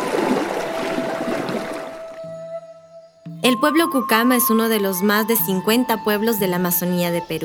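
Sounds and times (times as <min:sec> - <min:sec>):
rushing river water: 0:00.0 - 0:02.3
speech: 0:03.4 - 0:07.4.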